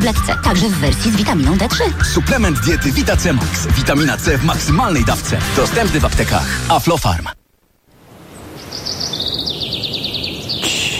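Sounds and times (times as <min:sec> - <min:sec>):
speech: 0:00.0 - 0:07.4
birds singing a rapid high-pitched trill: 0:08.3 - 0:10.9.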